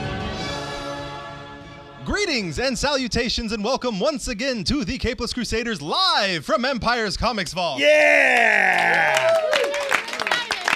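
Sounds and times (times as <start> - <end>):
speech: 2.1 - 9.5
live audience cheering with whoops: 7.8 - 10.7
scattered clapping: 8.2 - 10.7.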